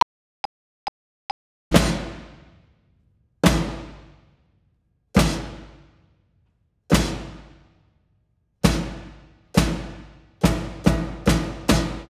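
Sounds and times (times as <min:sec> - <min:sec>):
drum solo: 0:01.7 - 0:02.5, 0:03.4 - 0:04.1, 0:05.2 - 0:05.8, 0:06.9 - 0:07.6, 0:08.6 - 0:12.1.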